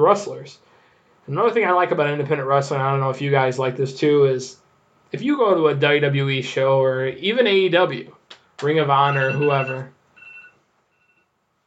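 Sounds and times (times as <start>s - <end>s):
speech: 0.0s - 0.7s, 1.3s - 10.0s
faint thin high-pitched mobile phone beeps: 9.0s - 11.3s.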